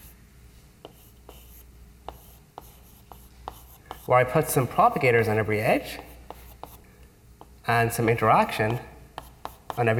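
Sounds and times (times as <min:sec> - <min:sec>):
hand drawing a physics diagram during a lecture: 0:00.8 - 0:04.1, 0:06.0 - 0:06.8, 0:08.7 - 0:09.9
speech: 0:04.1 - 0:06.1, 0:07.7 - 0:08.9, 0:09.8 - 0:09.9.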